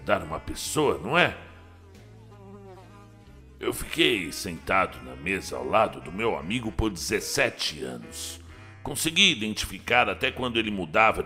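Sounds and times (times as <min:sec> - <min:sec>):
speech: 0:00.0 - 0:01.5, 0:03.6 - 0:11.2
fly buzzing: 0:00.0 - 0:08.9.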